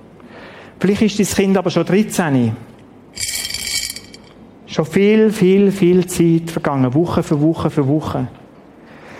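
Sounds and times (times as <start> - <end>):
speech: 0.8 - 2.7, 4.8 - 8.4
small balls clinking and rattling inside a glass jar: 3.2 - 4.4.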